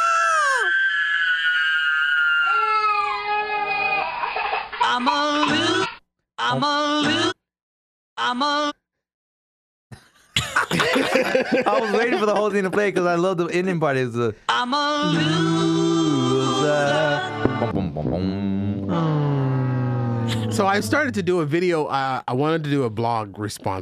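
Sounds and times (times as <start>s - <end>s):
high-pitched screaming from a played video: 0.0s - 4.2s, 18.9s - 21.1s
speech: 4.9s - 5.7s, 6.5s - 7.2s, 8.3s - 8.8s, 11.2s - 19.2s, 20.6s - 23.8s
laughter: 10.4s - 13.3s.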